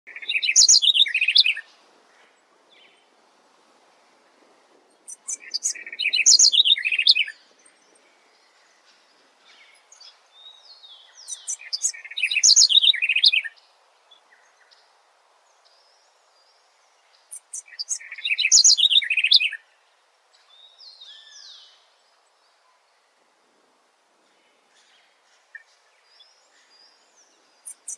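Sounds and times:
tepui wren singing: 0.1s - 1.7s, 4.9s - 15.0s, 15.6s - 19.6s, 24.7s - 27.9s.

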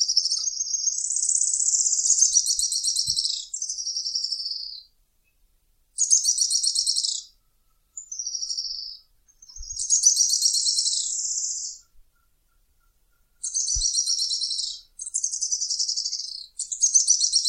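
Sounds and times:
Araucaria tit-spinetail trilling song: 0.0s - 5.4s, 6.0s - 17.4s.

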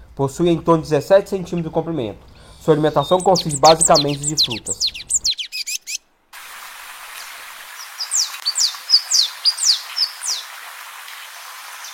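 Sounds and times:
faint background hiss: 0.0s - 11.6s
speech: 0.2s - 5.0s
Blue-and-yellow Tanager singing thin high slurred notes: 2.7s - 6.0s.

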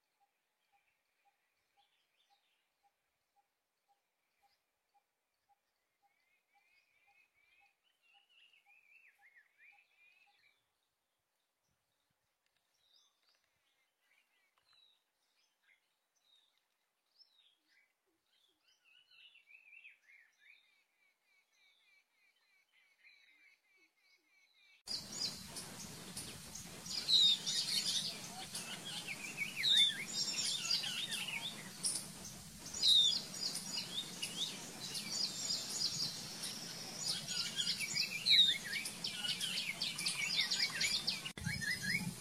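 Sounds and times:
Indian paradise flycatcher singing: 24.9s - 42.1s.

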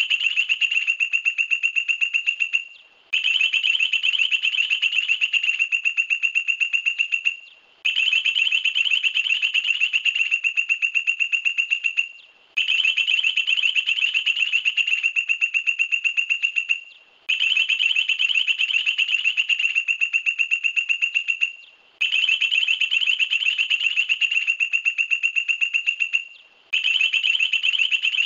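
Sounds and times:
point-tailed palmcreeper song rattle: 0.0s - 28.2s.

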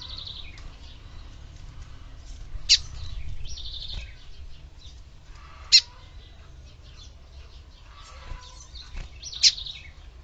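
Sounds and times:
Lined seedeater twittering and buzzy song: 0.0s - 10.1s.

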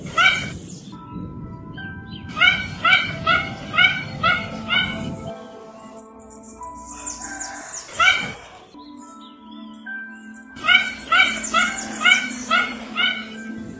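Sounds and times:
Mandarin duck yelping calls: 0.0s - 0.6s, 2.3s - 5.1s, 10.6s - 13.6s.

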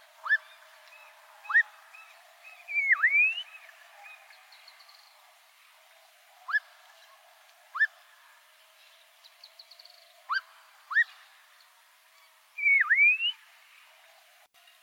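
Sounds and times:
black-crowned monjita song: 0.2s - 5.0s, 10.3s - 11.1s, 12.6s - 13.4s.

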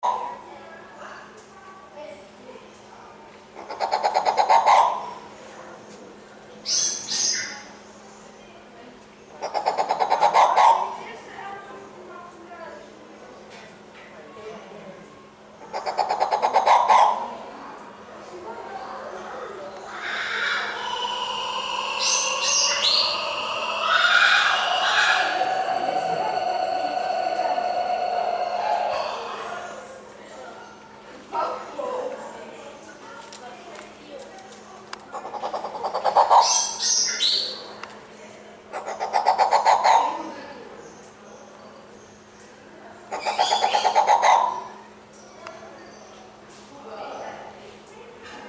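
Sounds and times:
violet turaco singing: 3.6s - 5.3s, 9.3s - 11.3s, 15.6s - 17.6s, 19.0s - 30.9s, 35.1s - 37.8s, 38.7s - 41.1s, 43.0s - 45.0s.

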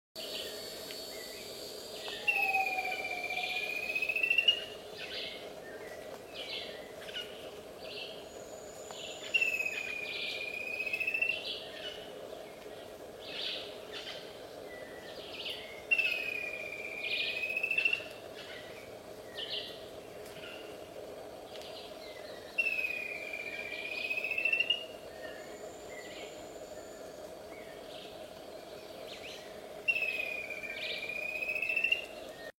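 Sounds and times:
galinha do mato bird calling: 2.0s - 7.4s, 8.9s - 12.0s, 13.3s - 18.8s, 22.5s - 26.4s, 29.2s - 32.2s.

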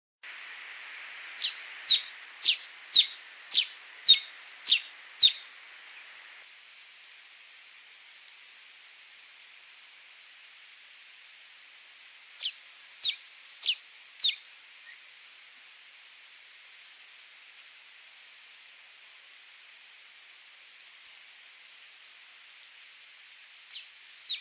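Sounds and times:
red-crested soldier bird singing: 1.2s - 6.4s, 12.4s - 15.0s, 23.7s - 24.3s.

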